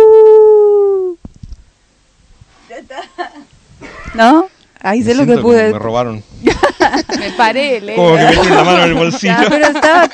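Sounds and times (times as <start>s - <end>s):
person imitating a wolf howl: 0.0s - 1.2s
speech: 4.2s - 10.1s
laughter: 6.5s - 10.1s.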